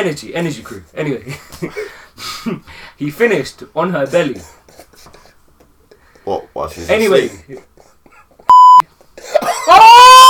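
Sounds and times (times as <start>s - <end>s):
speech: 0.0s - 4.6s, 6.3s - 7.7s
censor bleep: 8.5s - 8.8s
loud drawn-out vocal outburst: 9.7s - 10.2s.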